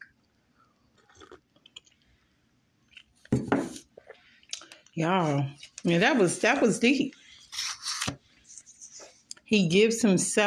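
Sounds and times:
slurping sip of hot chocolate: 1.0s - 1.4s, 7.4s - 8.1s
speech: 5.0s - 7.2s, 9.5s - 10.4s.

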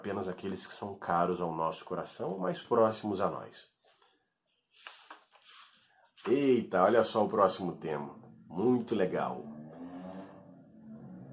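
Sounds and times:
speech: 0.0s - 3.7s, 6.2s - 9.5s
noisy car driving past outside: 7.7s - 11.3s.

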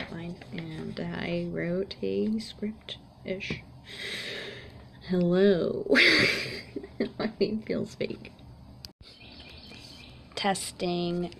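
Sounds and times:
speech: 0.4s - 4.5s, 5.1s - 8.4s, 10.4s - 11.3s
bird calls: 9.0s - 10.3s
birds singing: 9.0s - 10.6s.

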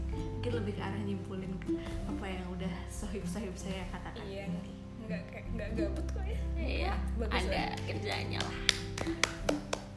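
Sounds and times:
speech: 0.4s - 9.7s
hands clapping: 7.6s - 9.9s.

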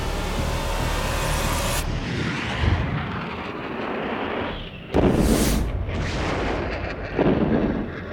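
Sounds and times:
jet engines of two small fast planes roaring: 0.0s - 8.1s
bombs exploding on airport runways: 5.0s - 7.9s.

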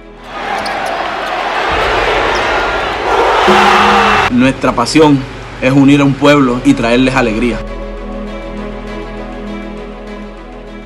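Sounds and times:
basketball arena crowd roaring in Ponce: 0.1s - 4.3s
speech: 3.5s - 7.7s.

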